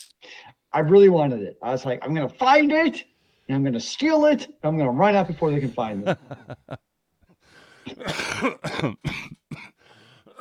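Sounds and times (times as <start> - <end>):
speech: 0.0 - 6.9, 7.9 - 9.7
laughter: 5.3 - 6.8
coughing from a tickle at the back of the throat: 7.8 - 10.3
throat clearing from a tickle at the back of the throat: 7.9 - 9.8.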